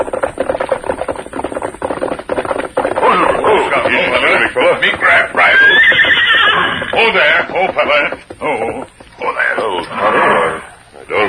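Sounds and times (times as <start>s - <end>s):
horse hooves clip-clopping: 0.0s - 11.2s
horse neighing and whinnying: 3.0s - 11.2s
speech: 4.5s - 5.6s, 7.0s - 8.9s.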